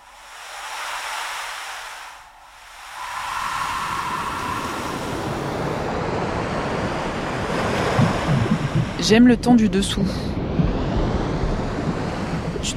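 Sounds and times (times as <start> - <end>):
ocean waves breaking on a shore: 0.0 - 12.7
wind noise: 0.0 - 12.7
speech: 9.0 - 10.3.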